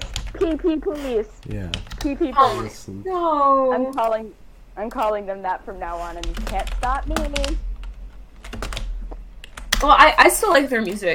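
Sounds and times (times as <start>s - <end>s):
rapid clicky typing on a membrane keyboard: 0.0s - 0.6s, 1.4s - 2.2s, 6.0s - 10.1s
speech: 0.5s - 7.7s, 9.8s - 11.1s.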